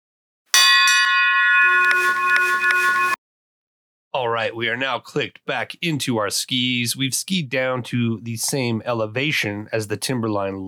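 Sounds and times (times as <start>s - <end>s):
large Austrian bell being struck: 0.6s - 3.2s
speech: 4.2s - 10.6s.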